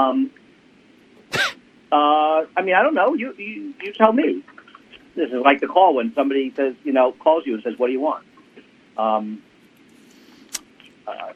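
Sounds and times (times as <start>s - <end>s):
speech: 0.0s - 0.4s, 1.9s - 4.5s, 5.2s - 8.3s, 9.0s - 9.5s
single short harsh cough: 1.3s - 1.6s.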